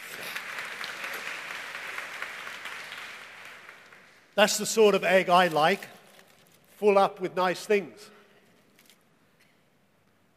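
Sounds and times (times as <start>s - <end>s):
audience clapping: 0.0s - 5.1s
speech: 4.4s - 6.0s, 6.8s - 8.2s.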